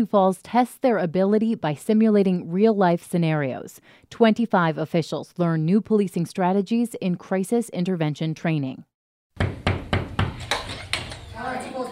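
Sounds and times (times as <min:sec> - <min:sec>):
speech: 0:00.0 - 0:09.6
firm knocks on a door: 0:09.3 - 0:11.1.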